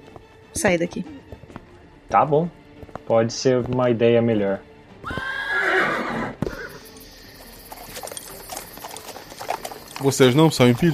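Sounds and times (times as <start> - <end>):
hooves clopping as riders set off: 0.0 - 10.9
speech: 0.6 - 1.3, 2.1 - 5.3, 10.0 - 10.9
horses neighing: 5.0 - 10.9.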